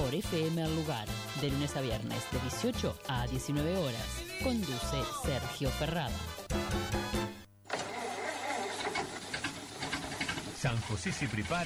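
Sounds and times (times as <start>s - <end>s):
speech: 0.1s - 7.0s, 10.6s - 11.6s
car starter motor whine: 7.6s - 11.6s.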